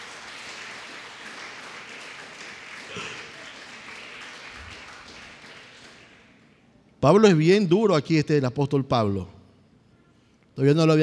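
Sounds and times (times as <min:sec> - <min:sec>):
congregation applauding: 0:00.0 - 0:06.5
speech: 0:07.0 - 0:09.4, 0:10.6 - 0:11.0.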